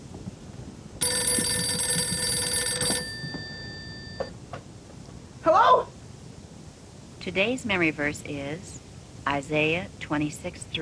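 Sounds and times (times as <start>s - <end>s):
telephone bell ringing: 1.0s - 4.4s
speech: 7.2s - 10.8s.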